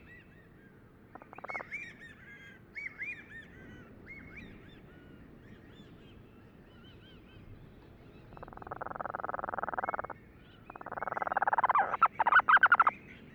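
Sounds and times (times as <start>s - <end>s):
Cape Verde storm petrel giving short harmonic calls: 8.3s - 13.0s.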